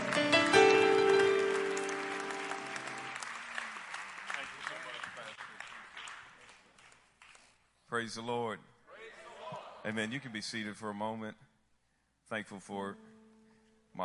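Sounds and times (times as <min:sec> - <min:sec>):
sustained keyboard chords: 0:00.0 - 0:03.2
large audience applause: 0:00.0 - 0:07.5
speech: 0:08.0 - 0:08.7, 0:09.8 - 0:11.4, 0:12.3 - 0:13.1.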